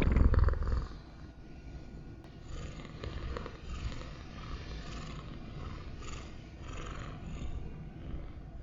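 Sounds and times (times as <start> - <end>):
cat purring: 0.0 - 1.1, 2.3 - 8.6.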